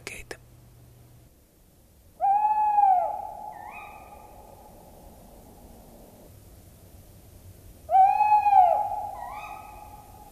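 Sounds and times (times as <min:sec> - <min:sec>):
tawny owl hooting: 0:02.2 - 0:06.3, 0:07.9 - 0:10.3.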